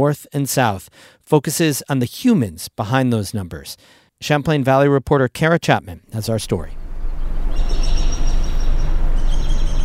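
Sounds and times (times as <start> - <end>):
speech: 0.0 - 6.8
birds chirping in thin high-pitched sustained calls: 6.2 - 9.8
steady loud low rumble of noise: 6.5 - 9.8.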